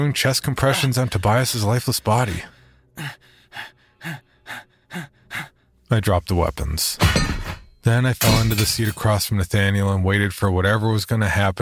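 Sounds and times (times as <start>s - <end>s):
speech: 0.0s - 4.2s, 5.9s - 11.6s
gasping for breath: 2.4s - 5.8s.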